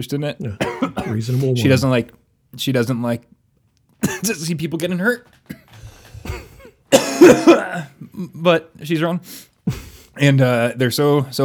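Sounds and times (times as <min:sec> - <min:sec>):
speech: 0:00.0 - 0:03.4, 0:04.1 - 0:05.6, 0:07.2 - 0:11.4
harsh loud coughs: 0:00.4 - 0:01.5, 0:04.0 - 0:04.4, 0:05.5 - 0:08.2.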